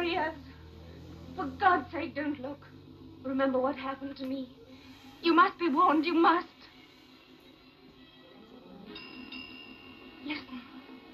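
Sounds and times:
speech: 1.4s - 4.6s, 5.2s - 6.5s
railway signal bell ringing: 8.9s - 10.5s.

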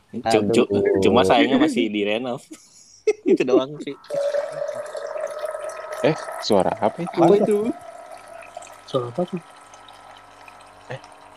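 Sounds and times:
speech: 0.1s - 4.4s, 6.0s - 7.8s, 8.9s - 9.5s, 10.9s - 11.1s
laughter: 0.4s - 4.0s
water being poured: 4.0s - 11.3s.

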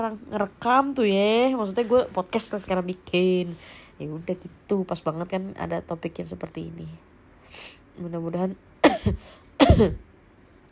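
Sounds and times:
speech: 0.0s - 10.1s
person coughing: 8.8s - 10.1s.

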